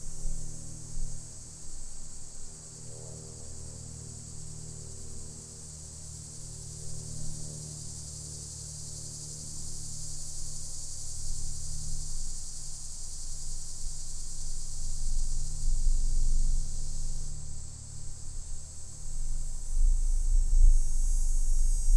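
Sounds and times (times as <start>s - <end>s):
Linne's cicada droning with a dog-day cicada: 0.0s - 21.9s
low rumble: 19.1s - 21.9s.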